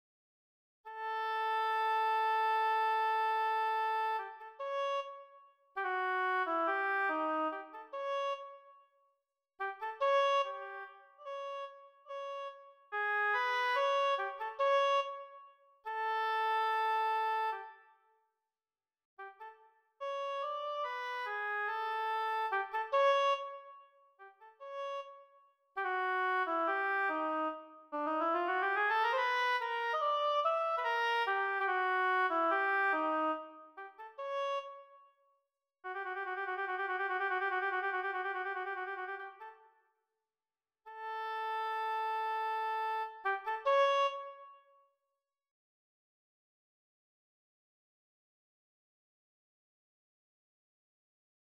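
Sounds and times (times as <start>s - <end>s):
oboe: 0.9s - 8.7s, 9.6s - 17.9s, 19.2s - 35.0s, 35.9s - 39.7s, 40.9s - 44.6s.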